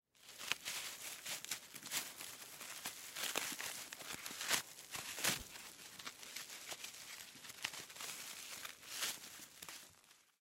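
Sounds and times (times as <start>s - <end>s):
rope knot tied and untied: 0.2s - 10.3s.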